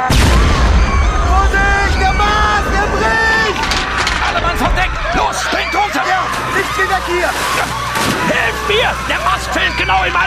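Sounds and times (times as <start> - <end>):
fiery explosion: 0.1 - 5.4
sustained moaning low drone: 0.1 - 6.5
speech: 6.8 - 10.2.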